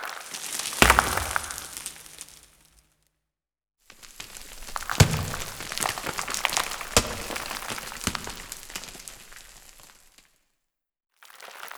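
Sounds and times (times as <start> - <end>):
rock debris with reverb: 0.1 - 2.6, 4.0 - 10.1.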